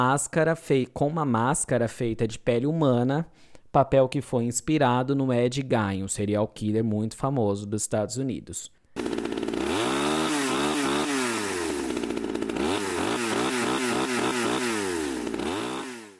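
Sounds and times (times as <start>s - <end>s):
speech: 0.0s - 9.1s
gasoline chainsaw engine revving: 9.0s - 16.1s.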